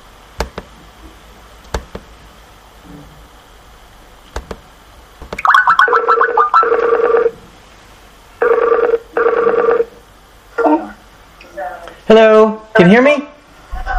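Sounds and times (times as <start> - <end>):
warbling bell-like electronic telephone ringing: 5.4 - 7.3, 8.4 - 9.9
speech: 12.1 - 13.3.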